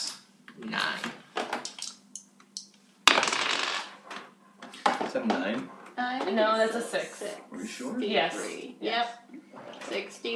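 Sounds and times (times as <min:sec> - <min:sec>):
percentile dice clattering on a hard table: 0:01.6 - 0:02.0, 0:03.1 - 0:04.2
percentile dice clicking while handled: 0:01.6 - 0:02.7
speech: 0:05.2 - 0:10.3.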